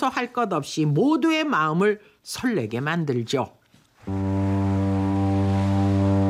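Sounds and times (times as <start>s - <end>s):
speech: 0.0s - 4.3s
passenger ferry horn blast at an island village: 4.0s - 6.2s.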